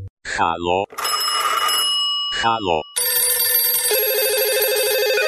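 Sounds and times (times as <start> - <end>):
speech: 0.4 - 0.8, 2.4 - 2.9
electronic telephone ring tone through a connecting line: 0.9 - 2.4, 3.0 - 5.2.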